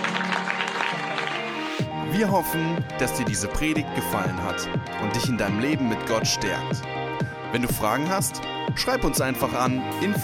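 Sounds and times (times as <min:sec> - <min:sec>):
crowd clapping: 0:00.0 - 0:01.8
speech: 0:02.1 - 0:10.2.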